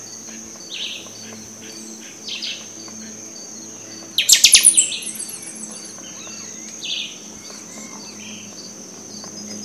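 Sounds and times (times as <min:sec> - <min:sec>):
buffy-fronted seedeater song at Itanhaém, São Paulo, Brazil: 0:04.1 - 0:07.2
steady high whine: 0:04.2 - 0:06.0.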